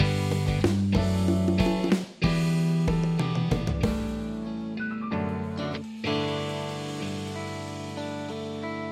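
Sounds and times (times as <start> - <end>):
drum: 0.0 - 4.5, 5.8 - 8.8.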